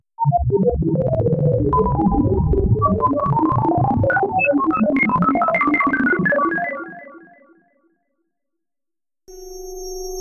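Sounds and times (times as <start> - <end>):
Synclavier synthesizer sound effect: 0.2 - 7.6.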